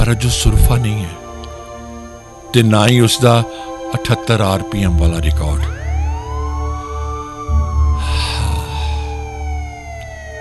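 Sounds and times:
speech: 0:00.1 - 0:01.2, 0:02.5 - 0:05.8
police car siren wailing: 0:04.9 - 0:10.3
low rumble: 0:07.4 - 0:10.3.

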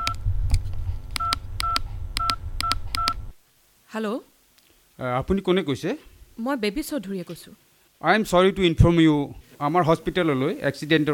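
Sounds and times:
mobile phone keypad tones as a number is dialled in a hospital: 0:00.0 - 0:00.2, 0:01.2 - 0:03.2
speech: 0:03.9 - 0:04.3, 0:05.0 - 0:11.1.

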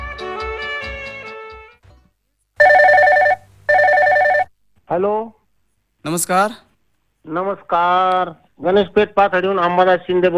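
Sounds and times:
telephone trilling electronic ring for an incoming call: 0:02.6 - 0:04.5
speech: 0:04.9 - 0:05.4, 0:06.0 - 0:10.3.

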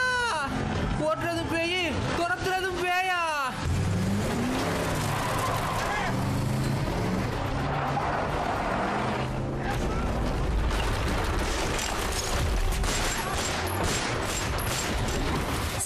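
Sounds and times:
several car engines roaring at speed in a chase: 0:00.0 - 0:15.8
tires skidding: 0:03.6 - 0:09.7.

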